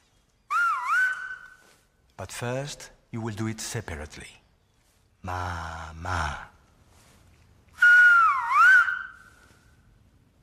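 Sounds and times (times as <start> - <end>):
speech: 2.2 - 4.4, 5.2 - 6.5
person whistling a word in a whistled language: 7.8 - 9.3.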